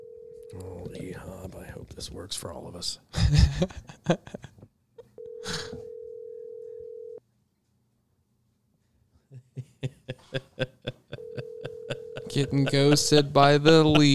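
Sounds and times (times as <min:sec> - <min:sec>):
outgoing phone call electronic ring tone: 0:00.0 - 0:00.6, 0:05.2 - 0:07.2, 0:11.2 - 0:13.0
speech: 0:00.5 - 0:04.4, 0:12.4 - 0:14.1
laughter: 0:09.3 - 0:14.1.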